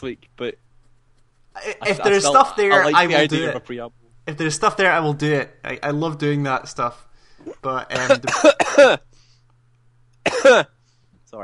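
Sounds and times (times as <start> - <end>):
speech: 0.0 - 0.7, 1.6 - 9.1, 10.4 - 11.4
person coughing: 8.0 - 9.0, 10.3 - 10.7.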